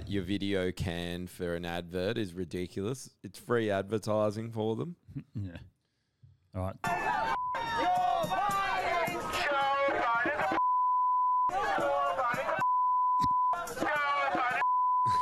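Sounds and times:
speech: 0.1s - 5.7s, 6.5s - 7.4s
loud overlapping voices: 6.8s - 10.6s, 11.5s - 12.7s, 13.5s - 14.6s
censorship bleep tone: 7.3s - 7.8s, 10.6s - 11.6s, 12.6s - 13.8s, 14.6s - 15.1s.

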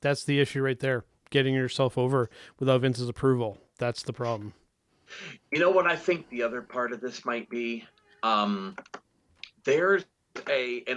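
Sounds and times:
speech: 0.0s - 9.0s, 9.6s - 10.9s
computer keyboard typing: 8.7s - 9.1s.

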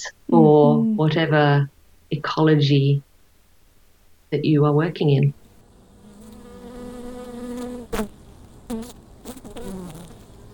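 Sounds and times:
speech: 0.0s - 3.1s, 4.3s - 5.4s
bees buzzing: 5.6s - 10.5s.

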